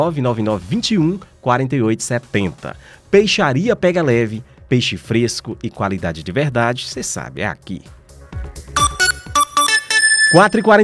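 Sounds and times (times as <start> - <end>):
speech: 0.0 - 8.8, 10.3 - 10.8
phone ringtone for an incoming call with bright electronic melody: 8.8 - 10.8.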